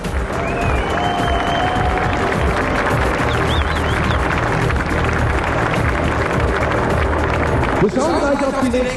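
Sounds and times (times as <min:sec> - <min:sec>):
large crowd applauding: 0:00.0 - 0:08.9
people cheering: 0:00.1 - 0:08.8
whistles: 0:00.4 - 0:01.8, 0:03.3 - 0:04.2
speech: 0:07.8 - 0:08.9.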